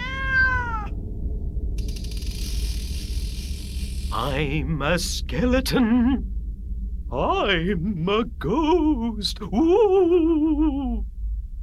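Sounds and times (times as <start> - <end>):
cat meowing: 0.0 - 0.9
mechanical rattling: 1.7 - 4.6
speech: 4.1 - 6.4, 7.1 - 11.1.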